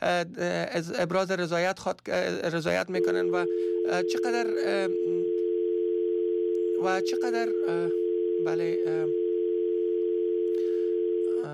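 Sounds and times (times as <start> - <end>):
speech: 0.0 - 5.2, 6.8 - 9.2
telephone dial tone after a dropped phone call: 3.0 - 11.5.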